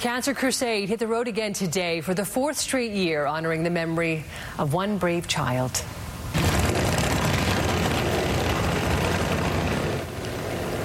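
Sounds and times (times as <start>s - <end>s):
speech: 0.0s - 6.4s
group of motorcycle engines roaring on a charity tour: 6.4s - 10.8s.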